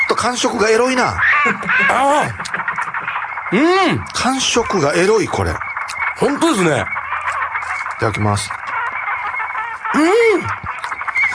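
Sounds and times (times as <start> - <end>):
bird giving a honking squawk: 0.0 - 11.3
speech: 0.2 - 2.5, 3.5 - 5.6, 6.2 - 7.0, 8.0 - 8.6, 10.0 - 10.6
laughter: 0.8 - 4.7.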